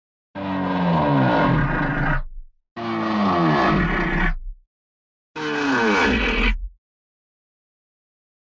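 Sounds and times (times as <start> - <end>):
lion roars: 0.4 - 4.4, 5.4 - 6.7.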